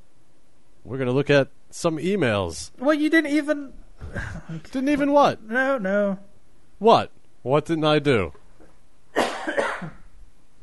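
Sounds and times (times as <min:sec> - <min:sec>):
speech: 0:00.9 - 0:08.4
person coughing: 0:04.0 - 0:04.7, 0:09.2 - 0:10.1.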